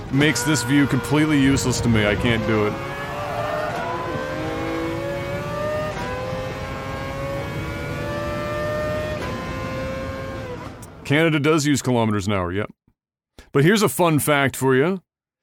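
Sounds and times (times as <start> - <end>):
GT car engine revving in a racing video game: 0.0 - 10.8
speech: 0.1 - 3.0, 11.1 - 12.8, 13.5 - 15.1.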